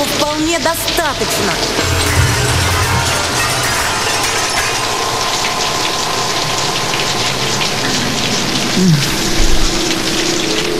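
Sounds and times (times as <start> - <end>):
rain pouring outdoors: 0.0 - 10.7
speech: 0.4 - 2.2, 8.8 - 9.2.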